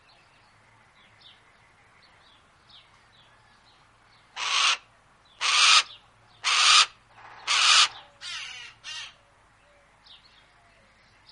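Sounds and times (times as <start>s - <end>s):
Harris's hawk harsh rasping calls: 4.4s - 4.8s, 5.4s - 9.2s.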